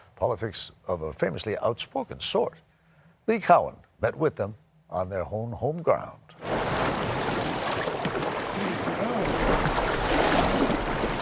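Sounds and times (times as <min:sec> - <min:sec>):
speech: 0:00.2 - 0:02.7, 0:03.3 - 0:06.4
water rushing and lapping on the South Fork of the Snake River in Idaho: 0:06.4 - 0:11.2.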